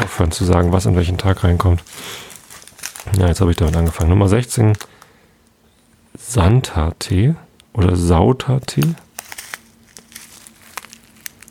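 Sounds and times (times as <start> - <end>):
thin plastic tea bag wrapper from an Advent calendar crinkling: 0.0 - 5.2, 8.6 - 11.4
quiet hum: 0.0 - 11.4
speech: 0.1 - 2.3, 3.0 - 4.9, 6.2 - 9.0.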